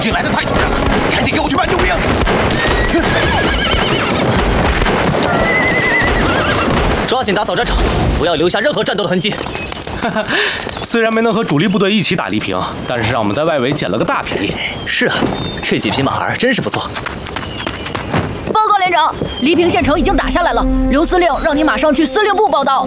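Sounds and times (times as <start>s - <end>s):
speech: 0.0s - 3.5s, 7.1s - 17.4s, 19.0s - 22.8s
hooves of captured horses clip-clopping: 0.0s - 7.4s, 8.7s - 11.8s, 15.2s - 19.4s
captured horses neighing after a battle: 1.6s - 7.0s.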